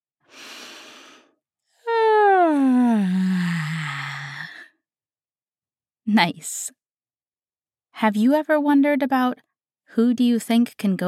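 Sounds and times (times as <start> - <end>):
big noisy sleepy yawn: 1.9 - 4.6
speech: 6.1 - 6.8, 8.0 - 11.0.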